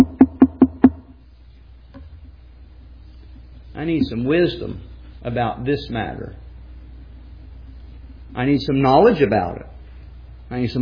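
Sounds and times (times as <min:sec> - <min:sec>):
knocking on a solid surface: 0:00.0 - 0:01.0
speech: 0:03.8 - 0:06.4, 0:08.4 - 0:09.8, 0:10.5 - 0:10.7.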